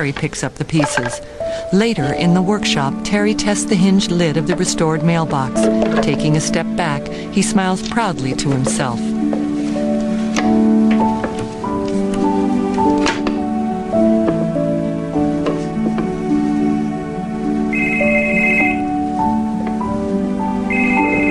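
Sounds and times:
speech: 0.0 - 9.5
steady melodic music: 0.0 - 21.3
cell phone ringing with a bright electronic tone: 17.7 - 19.4, 20.6 - 21.3.

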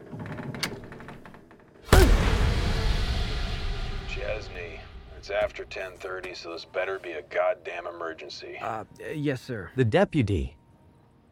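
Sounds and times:
loud whack of a bow striking a face: 1.9 - 5.8
speech: 4.2 - 10.6.

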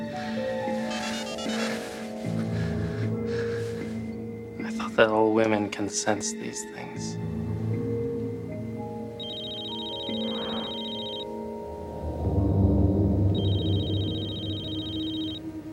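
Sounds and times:
low music: 0.0 - 15.7
telephone ringing with an electronic trill: 0.8 - 1.9, 9.2 - 11.3, 13.3 - 15.4
speech: 5.0 - 7.3.

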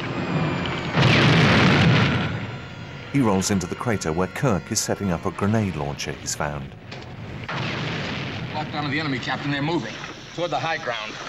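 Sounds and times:
constant rumbling background: 0.0 - 10.4
artillery shells exploding on either side: 0.8 - 3.0, 6.9 - 11.2
speech: 3.1 - 7.7, 8.6 - 11.2.

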